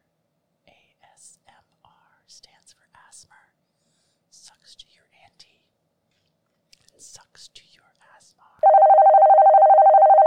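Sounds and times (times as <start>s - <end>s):
telephone ringing with a trilling electronic tone: 8.6s - 10.2s.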